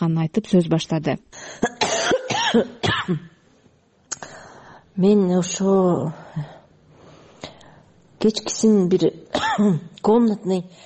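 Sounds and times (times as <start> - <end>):
speech: 0.0 - 3.3, 5.0 - 6.6, 8.2 - 10.8
person with bronchitis coughing: 1.6 - 3.4, 9.3 - 9.8.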